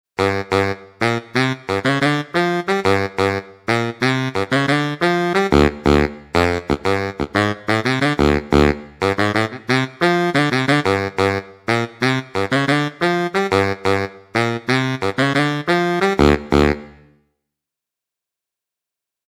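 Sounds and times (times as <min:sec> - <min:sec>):
baritone saxophone: 0:00.2 - 0:17.2.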